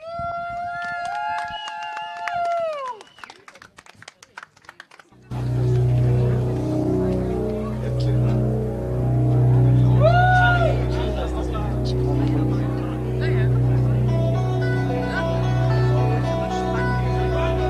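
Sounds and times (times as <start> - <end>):
crowd sound: 4.2 - 17.6
loud steady engine rumble with droning low notes: 5.3 - 17.6
sustained horn-like tones of an arriving vehicle: 5.3 - 17.6.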